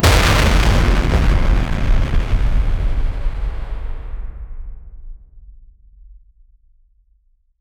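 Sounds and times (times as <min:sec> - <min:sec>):
fiery arcade explosion: 0:00.0 - 0:05.0.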